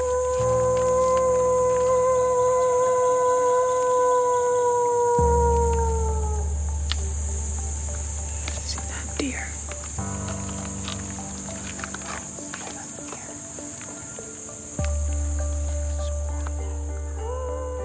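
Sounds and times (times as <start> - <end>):
people howling like wolves to get real wolves to join in: 0.0 - 7.1, 16.9 - 17.8
crickets chirping at night: 0.0 - 17.8.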